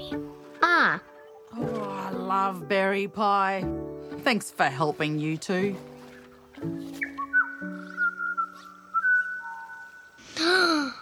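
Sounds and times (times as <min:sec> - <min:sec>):
speech: 0:00.8 - 0:01.7, 0:02.3 - 0:05.9
soft sustained whistling melody: 0:06.1 - 0:10.2
brief bright chirping bird call with sweeping pitch: 0:07.0 - 0:10.3.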